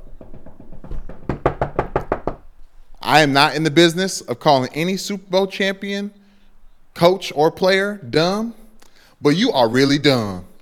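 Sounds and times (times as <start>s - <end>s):
knocking on wood: 0.0s - 2.5s
speech: 3.1s - 6.2s, 7.0s - 8.6s, 9.2s - 10.6s.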